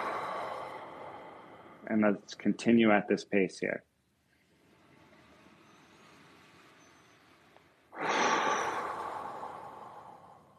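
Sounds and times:
long deep breath close to the microphone: 0:00.0 - 0:02.0, 0:04.3 - 0:10.5
speech: 0:01.9 - 0:03.9.

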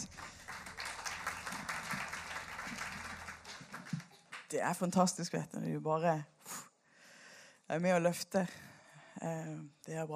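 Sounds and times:
crowd applauding: 0:00.0 - 0:04.6
speech: 0:04.5 - 0:06.4, 0:07.7 - 0:10.1.

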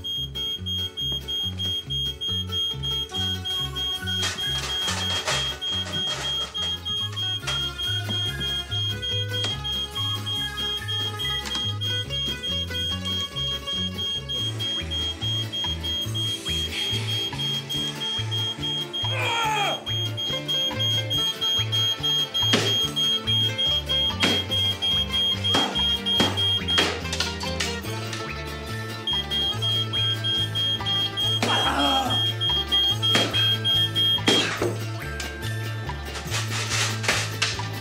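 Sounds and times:
shrill steady smoke alarm tone: 0:00.0 - 0:27.2, 0:28.9 - 0:34.9
busy rhythmic music with a thumping low beat: 0:00.0 - 0:37.7.

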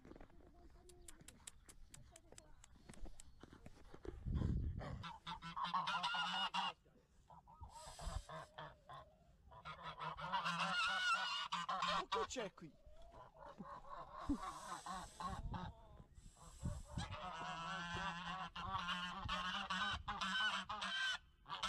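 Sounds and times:
hens clucking and squawking in a yard: 0:03.7 - 0:21.6
speech: 0:12.3 - 0:12.8, 0:14.3 - 0:15.5.

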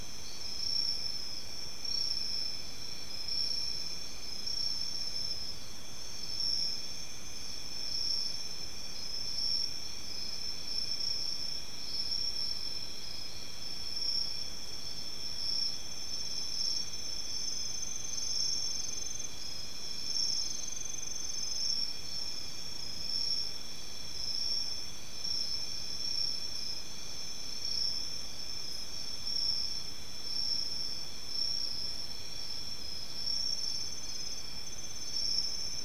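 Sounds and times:
chorus of crickets or similar insects in an oak forest: 0:00.0 - 0:35.8
soft even hiss of open-air background: 0:00.0 - 0:35.8.

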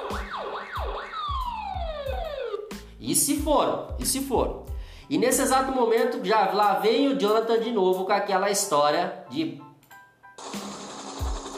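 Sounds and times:
police car siren wailing as the car drives off: 0:00.0 - 0:02.7
speech: 0:03.1 - 0:09.6.

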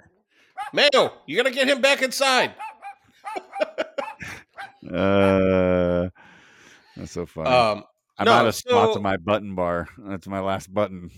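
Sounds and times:
dog barking: 0:00.6 - 0:00.9, 0:02.6 - 0:04.8
speech: 0:00.7 - 0:02.6, 0:04.9 - 0:06.2, 0:07.0 - 0:11.1
laughter: 0:03.2 - 0:06.1.

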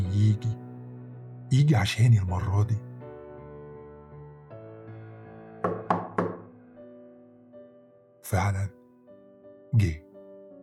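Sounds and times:
speech: 0:00.2 - 0:00.6, 0:01.5 - 0:02.9, 0:08.3 - 0:08.8, 0:09.7 - 0:10.0
quick solid knocks on a door: 0:05.6 - 0:06.5.

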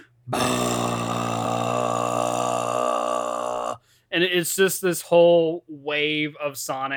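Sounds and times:
voice imitating a long loud belch: 0:00.3 - 0:03.8
speech: 0:04.2 - 0:06.9.

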